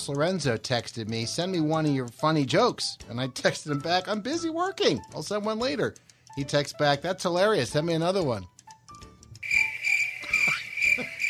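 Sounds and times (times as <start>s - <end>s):
speech: 0.0s - 8.5s
crickets chirping: 9.4s - 11.2s.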